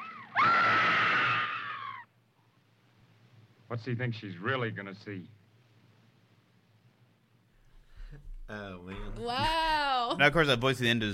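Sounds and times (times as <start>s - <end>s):
woman screaming in terror: 0.0s - 2.1s
speech: 3.7s - 5.4s, 8.5s - 11.1s.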